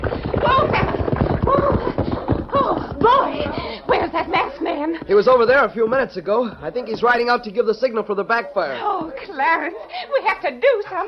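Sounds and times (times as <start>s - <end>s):
horse-drawn buckboard wagon rattling: 0.0s - 5.7s
horse hooves clopping: 0.0s - 9.8s
speech: 5.1s - 11.0s.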